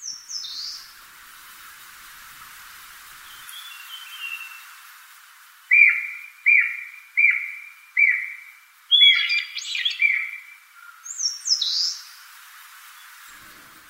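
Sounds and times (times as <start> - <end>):
high chirps and sharp calls from other birds: 0.0 - 0.9, 3.2 - 4.7, 5.7 - 12.2
Japanese green woodpecker whistling on Mount Takao, Tokyo, Japan: 5.7 - 10.4.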